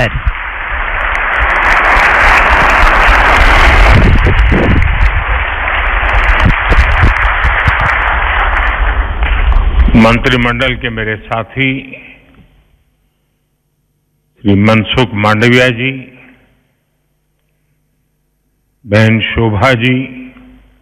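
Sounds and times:
speech: 0.0s - 0.3s, 10.0s - 12.1s, 14.4s - 16.1s, 18.8s - 20.2s
large crowd applauding: 0.0s - 9.4s.

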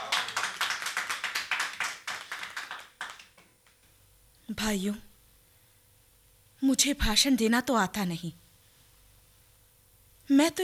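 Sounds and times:
crowd applauding: 0.0s - 3.4s
speech: 4.5s - 5.1s, 6.6s - 8.4s, 10.3s - 10.6s.

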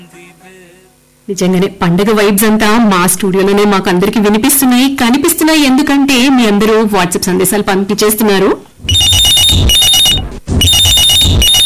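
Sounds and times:
speech: 1.3s - 9.8s
telephone ringing with electronic warble: 8.9s - 11.6s.

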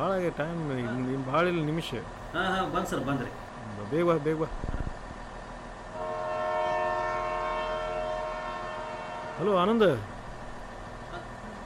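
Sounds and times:
speech: 0.0s - 4.8s, 9.4s - 10.1s
train horn of a train leaving the station: 5.9s - 10.1s.

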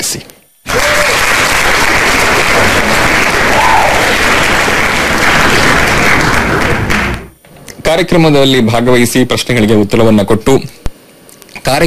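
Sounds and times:
speech: 0.1s - 0.4s, 7.9s - 10.8s, 11.6s - 11.8s
quiz programme audience applause: 0.7s - 7.3s.

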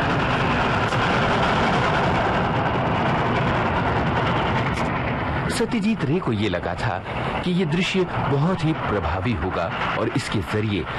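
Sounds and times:
train rumbling past a village, engine and rolling noise: 0.0s - 10.9s
speech: 5.6s - 10.9s.

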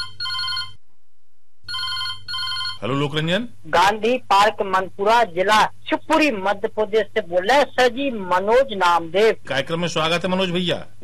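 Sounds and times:
telephone ringing for an incoming call to a call-in program: 0.0s - 0.8s, 1.7s - 2.8s
speech: 2.8s - 11.0s.

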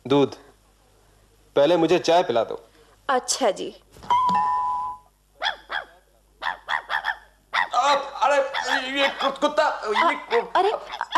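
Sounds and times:
speech: 0.1s - 0.4s, 1.6s - 4.4s, 8.9s - 11.1s
dog barking: 5.4s - 7.8s, 8.5s - 8.9s, 9.9s - 11.1s.

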